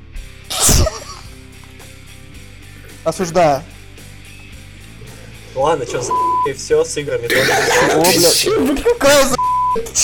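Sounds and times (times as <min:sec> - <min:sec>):
person sneezing: 0:00.5 - 0:01.1, 0:07.3 - 0:08.4
speech: 0:03.0 - 0:03.7, 0:05.6 - 0:10.0
laughter: 0:07.3 - 0:09.4.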